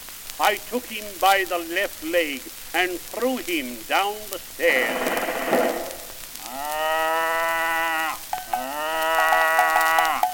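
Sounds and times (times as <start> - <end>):
speech: 0.4 - 5.5
cow mooing in long drawn-out lows: 4.7 - 10.3.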